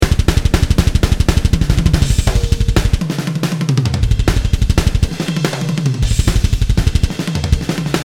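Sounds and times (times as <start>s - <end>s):
trip groove music: 0.0s - 8.0s.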